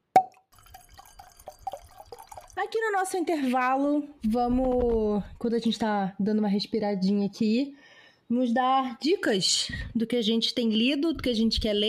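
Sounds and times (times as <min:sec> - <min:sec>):
soft scattered liquid-like drips: 0:00.2 - 0:03.5
glasses clinking in a toast between friends: 0:00.5 - 0:02.6
speech: 0:02.6 - 0:11.8.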